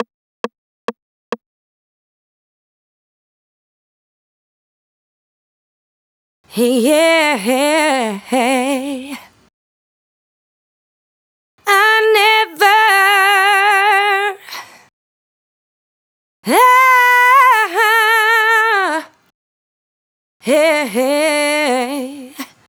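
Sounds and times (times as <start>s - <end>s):
vocal adlibs: 6.5s - 9.4s, 11.6s - 14.7s, 16.4s - 19.2s, 20.4s - 22.6s.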